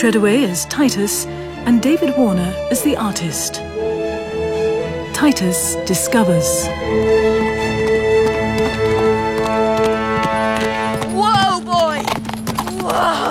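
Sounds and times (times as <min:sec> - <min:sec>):
speech: 0:00.0 - 0:04.0, 0:05.2 - 0:07.4
sustained musical drone: 0:00.0 - 0:12.4
horse hooves galloping: 0:06.7 - 0:13.2.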